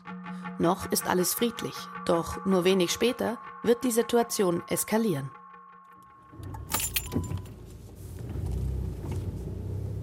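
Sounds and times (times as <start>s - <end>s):
speech: 0.6s - 5.4s
police car engine rumble driving toward the Kastanies border crossing: 6.3s - 10.0s
keys jangling: 6.5s - 7.6s.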